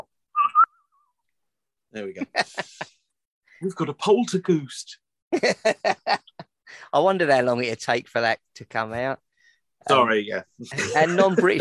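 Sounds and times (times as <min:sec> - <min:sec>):
human whistle in two wavering notes: 0:00.3 - 0:01.1
speech: 0:01.9 - 0:02.9, 0:03.6 - 0:09.2, 0:09.8 - 0:11.5.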